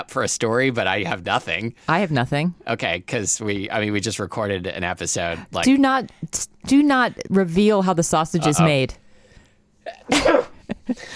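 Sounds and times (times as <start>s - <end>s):
speech: 0.0s - 9.0s, 9.8s - 11.1s
person sneezing: 9.8s - 10.6s.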